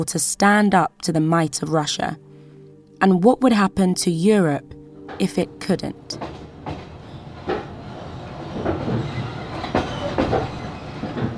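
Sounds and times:
speech: 0.0 - 2.3, 3.0 - 6.3
constant low rumble of a train heard inside the carriage: 5.0 - 11.3
train wheels clickety-clack on rails heard inside the carriage: 6.1 - 11.3.

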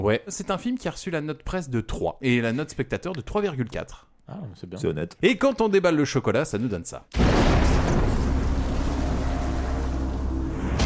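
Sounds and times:
speech: 0.0 - 7.6
explosion: 7.2 - 10.8
heavy rolling low rumble: 7.3 - 10.8.

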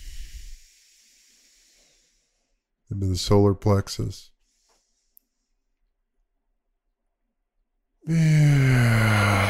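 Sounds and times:
long voiced exhale during a guided breathing exercise: 0.0 - 2.4, 8.1 - 9.4
speech: 2.9 - 4.3, 8.1 - 9.4.

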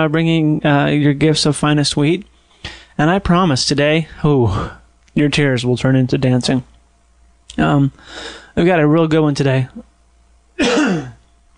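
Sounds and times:
speech: 0.0 - 6.7, 7.5 - 9.9, 10.6 - 11.1
single rough throaty cough: 10.6 - 11.2.

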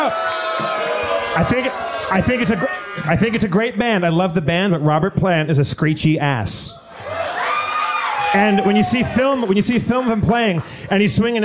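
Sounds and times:
live audience drawn-out boos: 0.0 - 3.6, 6.8 - 10.6
live audience crowd noise: 0.0 - 4.9, 6.1 - 11.4
speech: 1.4 - 7.2, 8.3 - 11.4.

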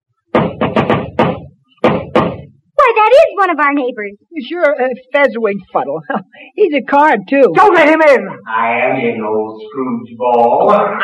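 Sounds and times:
loud knocking on a door: 0.3 - 2.6
speech: 3.4 - 11.0.

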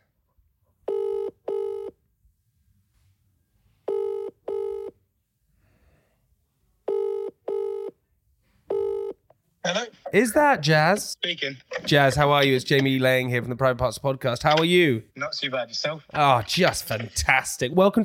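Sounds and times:
outgoing phone call double-ring tones: 0.9 - 1.9, 3.9 - 4.9, 6.9 - 7.9, 8.7 - 9.2
speech: 9.7 - 18.0.

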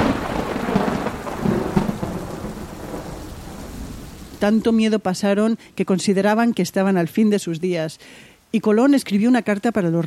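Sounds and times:
low rolling thunder: 0.0 - 4.4
steady rain hissing in a thunderstorm: 0.0 - 9.0
speech: 4.4 - 10.0.

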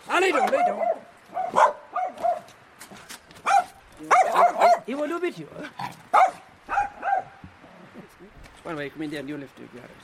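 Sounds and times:
speech: 0.2 - 1.7, 4.9 - 6.3, 8.7 - 10.0
dog barking at a house: 0.3 - 2.5, 3.4 - 4.9, 6.1 - 7.4.

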